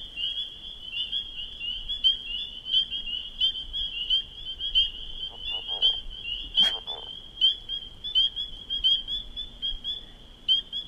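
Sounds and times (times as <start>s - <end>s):
dense chorus of spring peepers shrilling: 0.0s - 10.8s
louder clear single spring peeper peeps: 4.1s - 9.8s
leopard frog low rattling croak: 4.6s - 9.0s.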